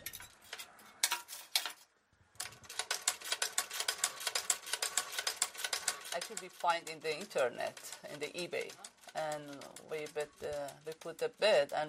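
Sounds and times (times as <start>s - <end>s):
150-year-old manual treadle sewing machine running: 2.4s - 11.8s
person talking: 6.1s - 11.8s.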